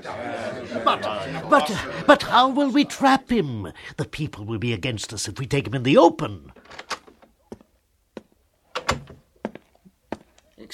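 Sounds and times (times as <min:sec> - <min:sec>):
laughter: 0:00.0 - 0:03.3
speech: 0:00.0 - 0:06.9
wooden thunks and clunks of a door being knocked on and handled: 0:06.6 - 0:10.3.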